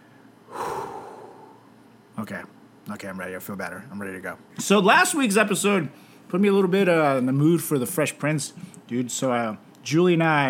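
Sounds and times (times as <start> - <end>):
person taking a deep breath through the nose: 0.2 - 1.7
speech: 2.2 - 10.4.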